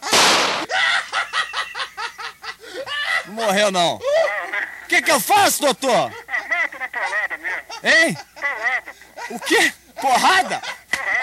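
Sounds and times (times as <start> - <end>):
loud gunshot blast: 0.0 - 0.7
laughter: 0.0 - 11.2
speech: 3.4 - 4.1, 4.9 - 6.2, 7.8 - 8.3, 9.3 - 10.7.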